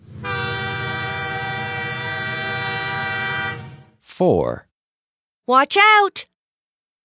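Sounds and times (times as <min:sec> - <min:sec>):
train horn blaring: 0:00.0 - 0:04.0
speech: 0:04.2 - 0:04.7, 0:05.5 - 0:06.3.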